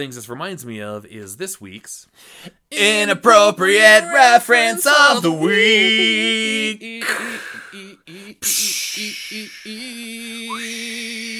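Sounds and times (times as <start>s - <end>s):
speech: 0.0s - 11.3s
person vocally imitating beach waves: 5.4s - 11.3s.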